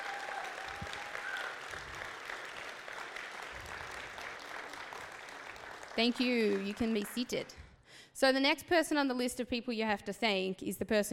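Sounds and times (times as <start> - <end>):
large crowd applause: 0.0 - 7.6
speech: 6.0 - 7.6, 8.2 - 11.1.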